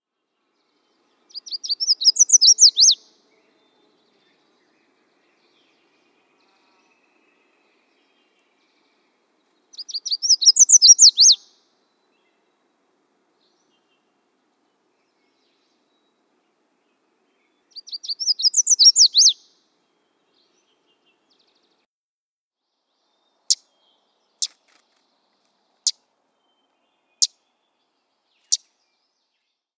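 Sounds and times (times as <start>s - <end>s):
red-faced warbler: 1.3s - 3.0s, 9.8s - 11.4s, 17.8s - 19.4s.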